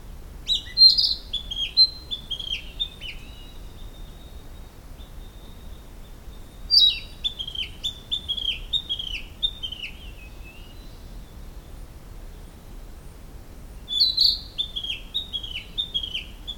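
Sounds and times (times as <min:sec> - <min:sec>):
Narcissus flycatcher singing at Tama Forest Science Garden: 0:00.5 - 0:11.2, 0:13.9 - 0:16.5.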